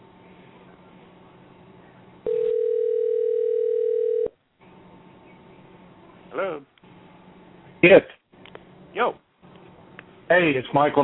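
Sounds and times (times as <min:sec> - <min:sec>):
faint hum: 0:00.0 - 0:11.0
telephone ringback tone on a call: 0:02.3 - 0:04.4
speech: 0:07.8 - 0:08.2, 0:10.3 - 0:11.0.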